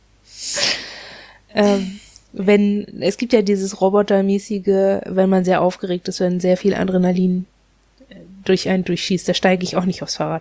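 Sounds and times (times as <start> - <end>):
speech: 1.5 - 10.3
dog coughing: 1.6 - 2.2.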